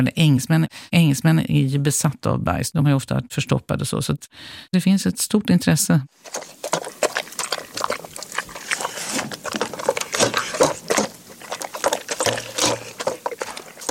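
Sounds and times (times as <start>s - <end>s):
speech: 0.0s - 6.9s
large dog snorting and snuffling: 6.2s - 13.8s.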